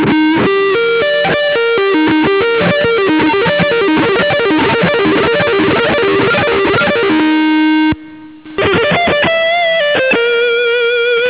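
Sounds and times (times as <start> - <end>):
decorative guitar sweep: 0.0 - 11.2.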